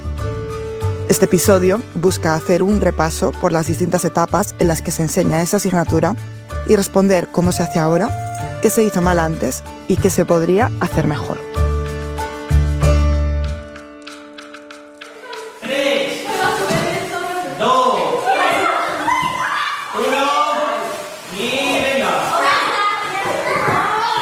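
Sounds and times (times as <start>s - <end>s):
music: 0.0s - 17.4s
speech: 1.2s - 11.5s
children shouting and laughing during a primary school physical education class: 15.2s - 21.0s, 21.9s - 24.1s.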